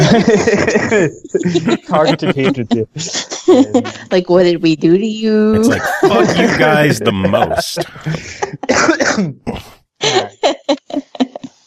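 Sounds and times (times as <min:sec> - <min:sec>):
laughter: 0:00.0 - 0:04.2, 0:05.5 - 0:11.5
speech: 0:00.1 - 0:11.3
man's loud coughing fit: 0:00.6 - 0:03.8, 0:05.6 - 0:10.3.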